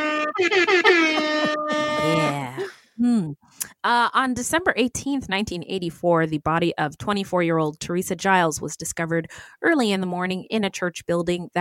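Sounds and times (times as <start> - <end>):
loud brassy hip hop air horn blasts: 0.0 - 2.6
speech: 0.4 - 1.0, 3.8 - 11.6.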